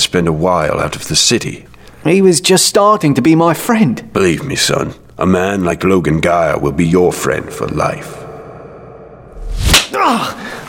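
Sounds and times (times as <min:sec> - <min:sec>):
speech: 0:00.1 - 0:08.2, 0:09.9 - 0:10.6
quick swish: 0:09.4 - 0:09.9
sharp loud slap across the face: 0:09.6 - 0:10.0
short pained grunt from a voice: 0:09.9 - 0:10.6.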